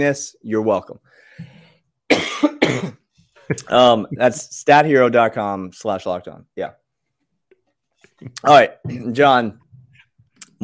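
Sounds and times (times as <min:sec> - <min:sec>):
speech: 0:00.0 - 0:01.5, 0:02.4 - 0:06.8, 0:08.2 - 0:09.6
harsh coughs into the microphone: 0:02.1 - 0:03.1.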